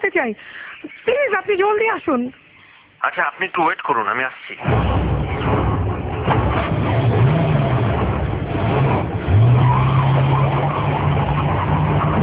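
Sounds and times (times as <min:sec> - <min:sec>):
speech: 0:00.0 - 0:02.4, 0:03.0 - 0:05.1
car engine roaring while driven fast: 0:04.6 - 0:12.2.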